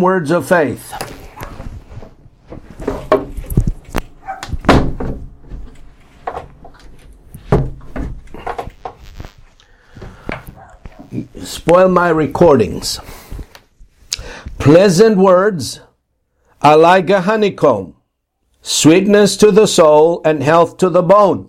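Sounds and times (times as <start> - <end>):
speech: 0.0 - 1.1, 11.7 - 13.2, 14.7 - 15.9, 16.6 - 18.0, 18.6 - 21.4
dogs barking next door outside: 4.2 - 4.6, 10.6 - 11.0
knocks and a thud of a window being closed: 4.4 - 6.5, 7.5 - 8.2.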